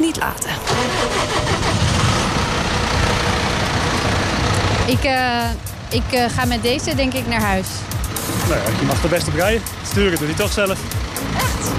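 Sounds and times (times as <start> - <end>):
wide-track tractor engine idling: 0.0 - 11.7
speech: 0.2 - 1.4, 4.9 - 7.9, 8.5 - 11.7.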